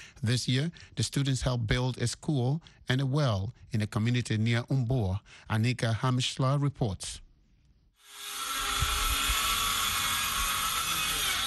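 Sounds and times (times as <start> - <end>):
speech: 0.2 - 7.2
power drills roaring: 8.0 - 11.4.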